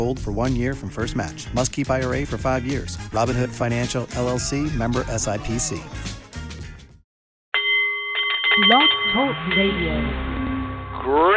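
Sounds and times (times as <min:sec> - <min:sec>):
speech: 0:00.0 - 0:06.2, 0:08.6 - 0:10.5, 0:11.1 - 0:11.3
Nepalese meditation bowl chiming: 0:07.6 - 0:11.3.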